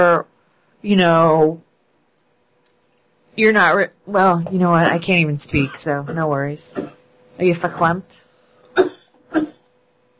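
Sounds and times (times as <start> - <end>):
speech: 0.0 - 1.6, 3.4 - 9.5
person coughing: 5.6 - 7.0, 8.7 - 9.7.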